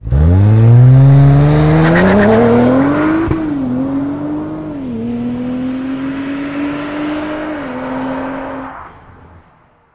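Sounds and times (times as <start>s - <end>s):
Audi RS4 accelerating, recorded outside: 0.0s - 9.9s.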